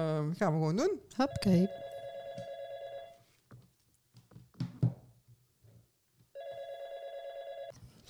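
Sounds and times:
speech: 0.0 - 1.8
ringback tone of an outgoing telephone call: 1.3 - 3.2, 6.4 - 7.7.

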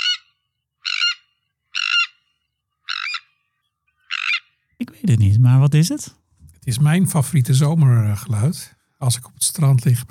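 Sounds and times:
Sandwich tern calls: 0.0 - 5.3
speech: 4.8 - 10.0.

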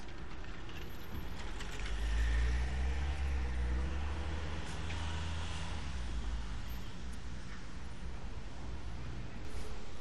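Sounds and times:
busy street traffic with cars and buses at a crossing on the Janskerkhof square: 0.0 - 10.0
deep engine rumble of a heavy vehicle passing: 1.8 - 6.5.

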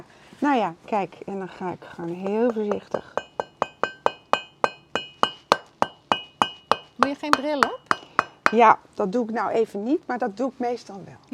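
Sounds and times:
speech: 0.4 - 3.2, 7.2 - 7.9, 8.5 - 11.3
hammer striking a metal chisel while chipping: 2.2 - 8.7.

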